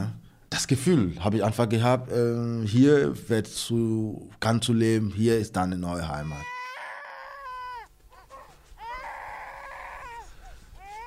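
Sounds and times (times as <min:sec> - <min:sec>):
speech: 0:00.6 - 0:06.5
young infant crying during a diaper change in an apartment: 0:06.2 - 0:11.0
faint rustling: 0:07.7 - 0:11.0.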